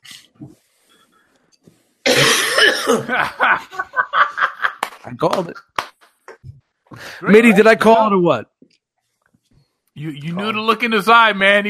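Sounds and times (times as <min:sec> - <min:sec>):
man coughing: 0:02.1 - 0:03.4
speech: 0:02.8 - 0:04.0, 0:05.0 - 0:05.7, 0:07.2 - 0:08.5, 0:10.0 - 0:11.6
laughter: 0:03.0 - 0:05.8, 0:07.2 - 0:07.8.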